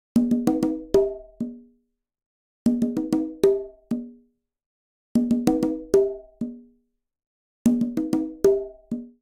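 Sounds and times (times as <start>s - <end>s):
songo rhythm on quinto conga and tumba at 96 bpm: 0.2s - 1.7s, 2.7s - 4.2s, 5.2s - 6.7s, 7.7s - 9.2s.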